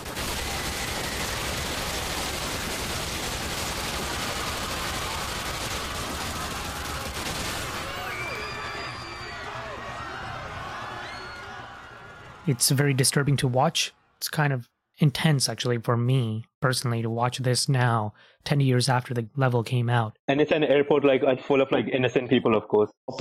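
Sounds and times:
video game gunfire barrage in an airport level: 0:00.0 - 0:08.6
speech: 0:12.5 - 0:23.2.

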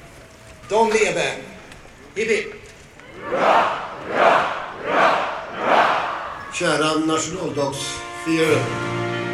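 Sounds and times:
speech: 0:00.7 - 0:01.5, 0:02.2 - 0:02.6, 0:03.2 - 0:05.8, 0:06.5 - 0:09.0
large crowd shouting hurrah in unison: 0:03.0 - 0:07.0.

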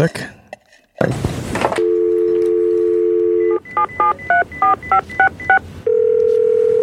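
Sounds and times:
speech: 0:00.0 - 0:00.4, 0:01.0 - 0:01.4, 0:03.9 - 0:05.7
touch-tone beeps of a number being dialed: 0:01.8 - 0:06.2
phone dial tone: 0:01.8 - 0:06.8.

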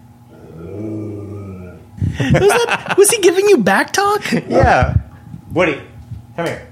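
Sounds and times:
dog growling: 0:00.3 - 0:02.0
laughter: 0:02.0 - 0:03.6
speech: 0:02.2 - 0:06.7.

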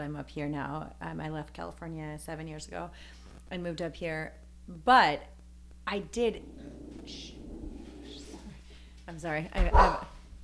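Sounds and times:
speech: 0:00.0 - 0:07.4, 0:09.1 - 0:10.1
steady low hum: 0:00.0 - 0:10.4
dog whining: 0:06.1 - 0:08.6
dog barking at a neighbor's yard: 0:06.2 - 0:08.6, 0:09.7 - 0:10.2.

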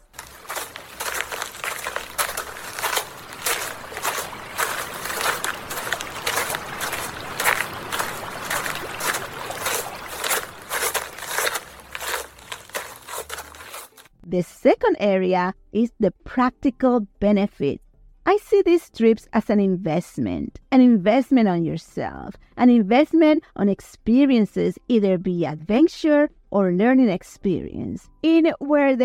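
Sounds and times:
crunchy footsteps walking beside a waterfall: 0:00.0 - 0:14.2
water rushing from a waterfall: 0:02.4 - 0:11.1
speech: 0:14.4 - 0:29.0.

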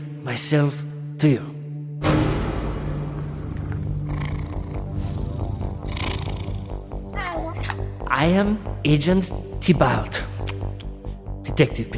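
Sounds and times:
speech: 0:00.2 - 0:02.1, 0:08.2 - 0:10.3, 0:11.6 - 0:11.9
cat purring: 0:03.0 - 0:07.5.

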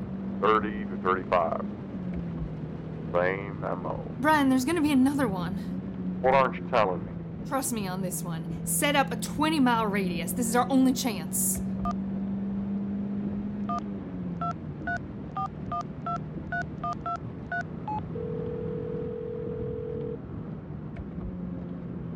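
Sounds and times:
low engine-like hum: 0:00.0 - 0:22.1
speech: 0:00.4 - 0:01.8, 0:03.1 - 0:12.0
long steady phone ringing tone going unanswered: 0:17.9 - 0:20.2.

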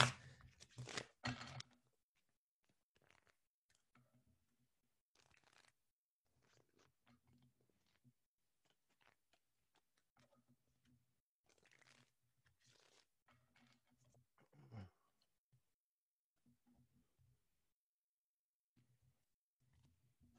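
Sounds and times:
deck of tarot cards being shuffled: 0:00.0 - 0:01.6.

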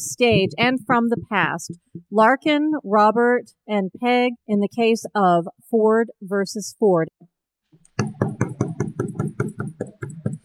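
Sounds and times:
speech: 0:00.0 - 0:07.3
heavy pounding knocks on a door: 0:08.0 - 0:10.4.

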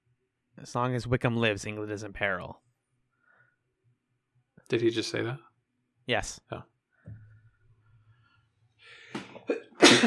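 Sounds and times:
speech: 0:00.6 - 0:02.6, 0:04.7 - 0:05.5, 0:06.1 - 0:07.2
single sneeze with breathy inhales: 0:09.2 - 0:10.0.

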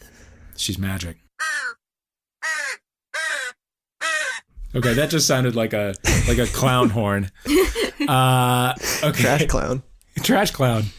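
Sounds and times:
speech: 0:00.6 - 0:01.2, 0:04.7 - 0:10.9
crow cawing: 0:01.4 - 0:01.8, 0:02.4 - 0:04.5
laughter: 0:06.0 - 0:09.5.

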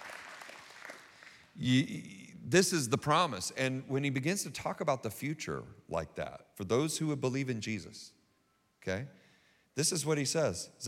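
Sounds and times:
crowd clapping: 0:00.0 - 0:01.6
speech: 0:01.6 - 0:08.2, 0:08.8 - 0:09.2, 0:09.8 - 0:10.8.

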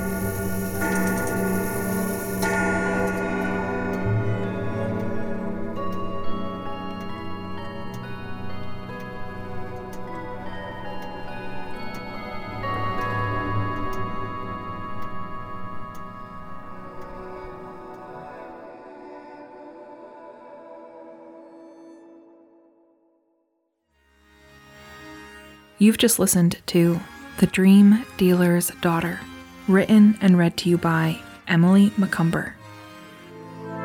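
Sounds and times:
grandfather clock in a hall ticking: 0:00.0 - 0:18.2, 0:25.8 - 0:33.8
speech: 0:25.8 - 0:32.6.

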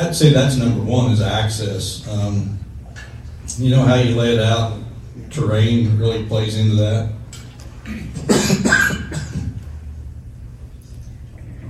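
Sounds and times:
speech: 0:00.0 - 0:02.7, 0:03.6 - 0:07.2
low steady hum: 0:00.0 - 0:11.6
harsh raspy coughs: 0:07.9 - 0:09.6.

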